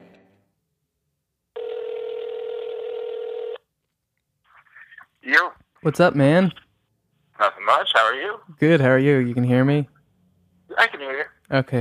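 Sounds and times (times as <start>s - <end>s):
steady electronic telephone tone as a call is placed: 1.6s - 3.6s
speech: 5.3s - 6.6s, 7.7s - 9.9s, 11.5s - 11.7s.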